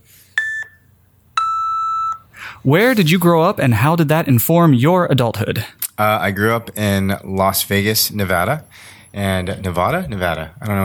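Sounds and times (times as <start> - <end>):
electronic timer beeps: 0.4 - 2.3
speech: 2.6 - 10.8.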